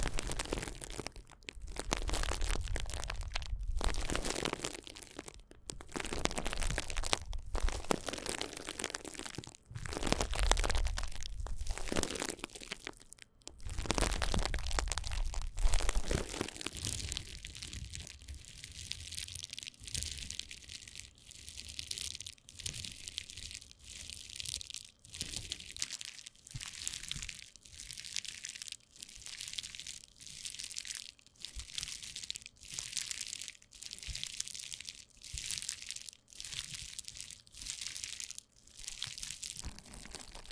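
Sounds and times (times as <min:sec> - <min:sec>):
bubble wrap packaging crinkling and crunching while handled: 0:00.0 - 0:40.5.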